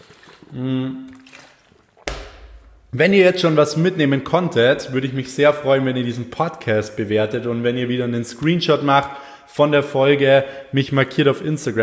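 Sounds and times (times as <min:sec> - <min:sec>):
person gulping and swallowing water: 0:00.0 - 0:02.9
speech: 0:00.5 - 0:01.0, 0:03.0 - 0:11.8.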